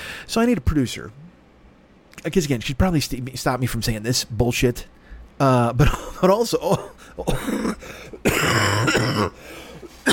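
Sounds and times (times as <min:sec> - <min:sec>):
speech: 0:00.3 - 0:01.2, 0:02.2 - 0:10.1
loud cough with throat-clearing rasp: 0:05.8 - 0:10.1.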